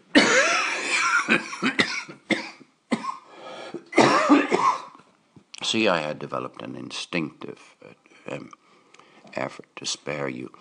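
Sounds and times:
person coughing harshly: 0.1s - 5.0s
speech: 5.7s - 8.6s, 9.3s - 10.5s.

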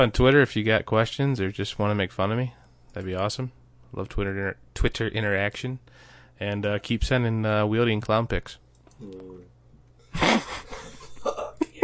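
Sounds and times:
speech: 0.0s - 9.5s
person coughing: 10.2s - 11.8s.

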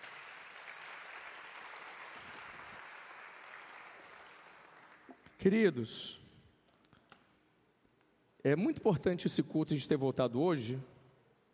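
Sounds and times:
large audience applauding: 0.0s - 5.2s
speech: 5.4s - 6.2s, 8.4s - 10.9s.

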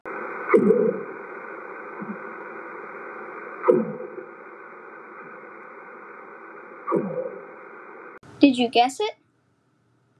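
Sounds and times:
northern right whale calling: 0.2s - 8.2s
speech: 0.5s - 1.1s, 8.5s - 9.2s.

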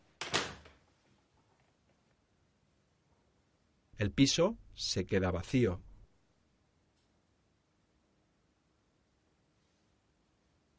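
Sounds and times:
apartment door being pulled shut: 0.2s - 0.8s
speech: 4.0s - 5.9s.

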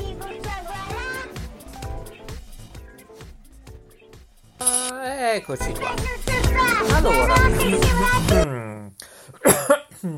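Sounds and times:
speech: 4.6s - 8.6s
raspy breaths: 9.0s - 9.4s
person coughing: 9.3s - 10.1s.

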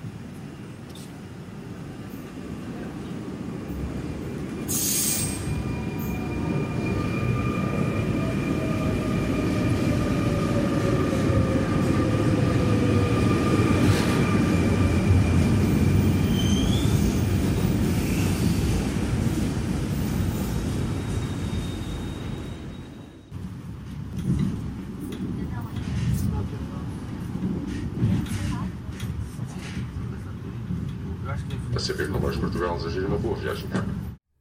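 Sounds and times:
train rumbling alongside a station platform: 0.0s - 34.2s
train wheels squealing: 4.5s - 11.6s, 12.8s - 18.7s, 20.0s - 23.3s
speech: 32.0s - 33.8s.

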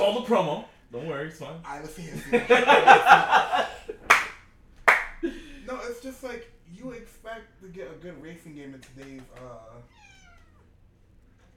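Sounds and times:
speech: 0.2s - 3.8s, 5.2s - 10.0s
laughter: 2.0s - 4.3s
cat meowing: 9.8s - 10.8s.

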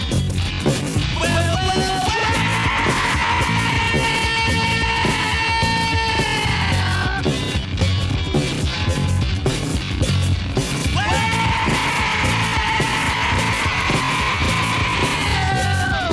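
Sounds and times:
distorted guitar: 0.0s - 16.1s
loud dense rock band music: 0.0s - 16.1s
pounding drums: 0.3s - 16.1s
male rock vocalist screaming hoarse sustained notes on a record: 1.2s - 7.2s, 11.0s - 16.1s.

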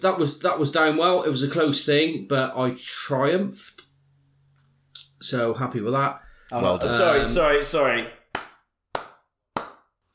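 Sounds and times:
speech: 0.0s - 3.8s, 5.2s - 8.2s
slow hand clapping: 8.3s - 10.0s.

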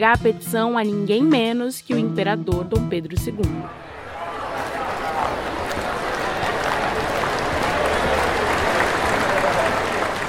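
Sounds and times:
speech: 0.0s - 3.9s
faint murmur of voices: 3.5s - 10.2s
large crowd applauding: 3.8s - 10.2s.

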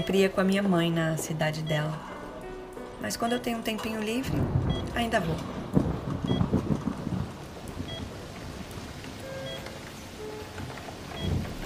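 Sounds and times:
speech: 0.0s - 2.1s, 3.0s - 5.8s
steady rain: 2.2s - 11.6s
deep rumbling: 3.3s - 11.6s.

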